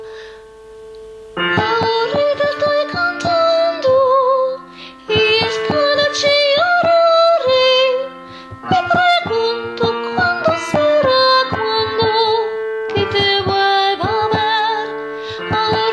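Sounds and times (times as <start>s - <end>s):
tenor singing: 1.5s - 15.9s.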